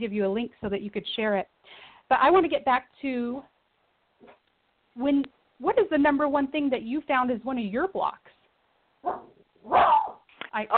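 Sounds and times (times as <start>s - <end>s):
speech: 0.0s - 3.5s, 5.0s - 8.4s, 9.0s - 10.7s
dog barking: 9.0s - 10.7s.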